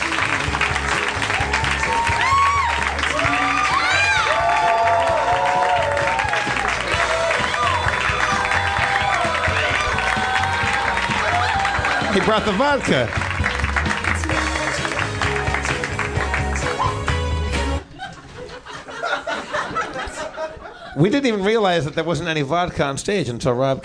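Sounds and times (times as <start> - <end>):
large audience applauding: 0.0 - 17.9
speech: 12.2 - 13.2, 21.0 - 23.8
laughter: 17.8 - 21.1.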